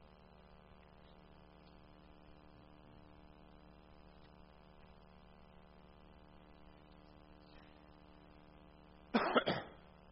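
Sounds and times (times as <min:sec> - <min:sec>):
harsh coughs: 0:09.1 - 0:09.9.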